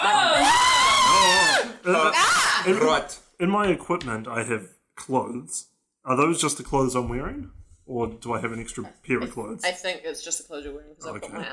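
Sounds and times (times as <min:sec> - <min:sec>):
loud high-pitched human scream: 0:00.0 - 0:03.0
speech: 0:01.9 - 0:11.5.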